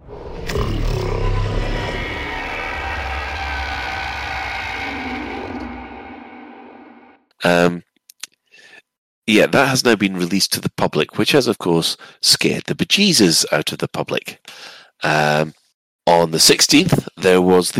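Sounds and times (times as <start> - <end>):
alien roar sound effect: 0.0 - 7.2
grinding metallic drone: 0.0 - 7.2
speech: 7.4 - 7.8, 9.3 - 17.7.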